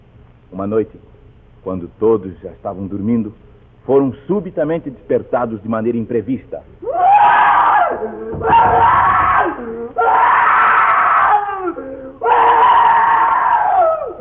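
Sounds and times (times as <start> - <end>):
speech: 0.5 - 7.1, 7.9 - 10.2
young man screaming in terror at night in a sitting room: 6.8 - 14.2.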